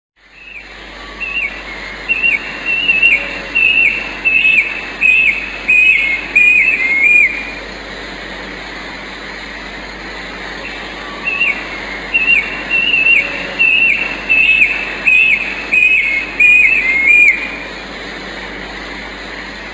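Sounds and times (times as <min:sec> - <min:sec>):
brush cuckoo: 0:00.4 - 0:07.7, 0:10.6 - 0:17.9.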